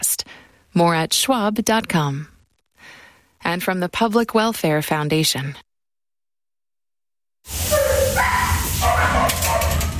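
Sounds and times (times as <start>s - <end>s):
speech: 0.8s - 2.3s, 3.4s - 5.6s
several dogs barking, yelping and whining at an animal shelter: 7.5s - 9.9s.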